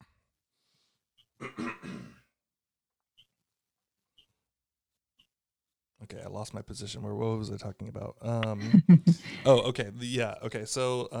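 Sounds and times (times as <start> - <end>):
person clearing throat: 1.4 - 2.3
speech: 6.1 - 11.1.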